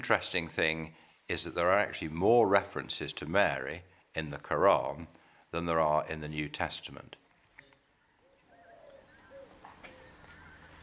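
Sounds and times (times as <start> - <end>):
speech: 0.0 - 7.2
faint birdsong among trees: 7.3 - 10.8
bird chirps: 8.0 - 10.8.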